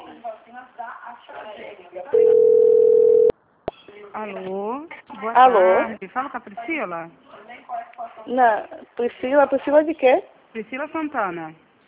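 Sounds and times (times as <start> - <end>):
telephone tone after a dropped call: 2.2 - 3.3
speech: 4.2 - 7.2, 8.2 - 11.6.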